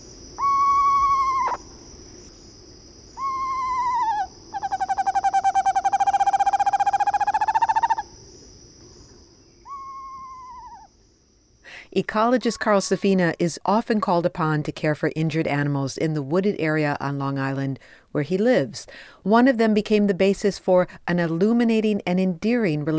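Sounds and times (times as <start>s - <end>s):
screech owl giving clear mellow whistled calls: 0.4s - 1.8s, 3.1s - 8.1s, 9.6s - 10.9s
speech: 12.0s - 22.9s.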